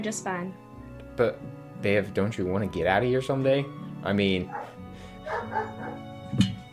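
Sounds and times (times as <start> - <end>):
speech: 0.0 - 6.5
several dogs barking and yipping at a kennel: 4.4 - 6.2.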